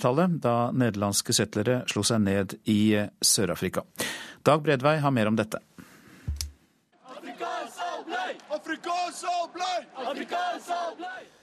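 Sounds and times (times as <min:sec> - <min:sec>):
speech: 0:00.0 - 0:05.8, 0:09.1 - 0:11.3
group of students chanting protest slogans: 0:07.0 - 0:11.4.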